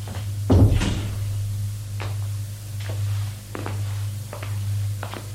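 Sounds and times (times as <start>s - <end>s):
soft footsteps: 0.1s - 5.3s
steady low hum: 0.3s - 3.2s
door swinging shut with a solid thud: 0.5s - 1.7s.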